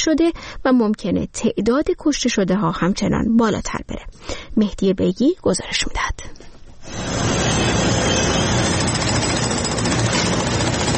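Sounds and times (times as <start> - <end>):
speech: 0.0 - 7.7
grinding mechanical noise of rescue tools: 6.8 - 10.9
heavy rescue machinery engine drone: 6.9 - 10.9.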